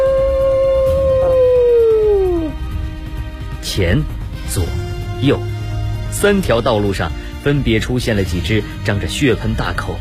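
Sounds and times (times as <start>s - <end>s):
wolf howling: 0.0s - 2.6s
speech: 3.8s - 5.5s, 6.1s - 9.9s.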